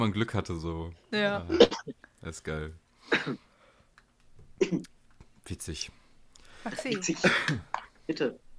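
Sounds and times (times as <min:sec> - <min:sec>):
speech: 0:00.0 - 0:03.5, 0:04.6 - 0:04.9, 0:05.5 - 0:06.0, 0:06.6 - 0:08.5
smoker coughing harshly: 0:01.5 - 0:01.9, 0:03.1 - 0:03.5, 0:04.6 - 0:04.8, 0:07.2 - 0:07.9.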